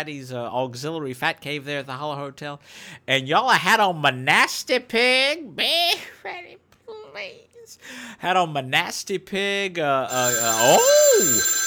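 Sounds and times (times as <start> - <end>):
speech: 0.0 - 6.6, 7.2 - 11.6
telephone ringing with a warbling electronic tone: 10.1 - 11.6.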